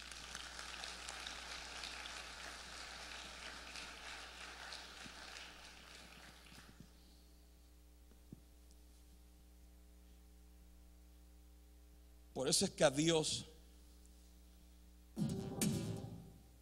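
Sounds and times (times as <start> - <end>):
crowd applauding at a preacher's request: 0.0 - 6.8
low electrical hum: 0.0 - 16.6
speech: 12.4 - 13.5.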